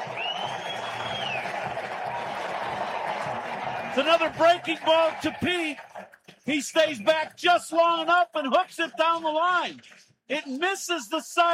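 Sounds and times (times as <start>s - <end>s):
shrill whistle: 0.0s - 1.8s
baseball stadium crowd cheering after run scores: 0.0s - 11.5s
speech: 4.0s - 5.8s, 6.4s - 11.5s.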